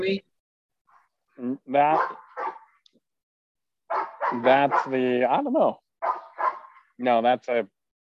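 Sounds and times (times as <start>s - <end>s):
speech: 0.0s - 0.3s, 1.4s - 2.2s, 4.3s - 6.2s, 7.0s - 7.8s
dog giving alert barks in a church garden: 1.9s - 2.8s, 3.9s - 5.0s, 6.0s - 6.9s.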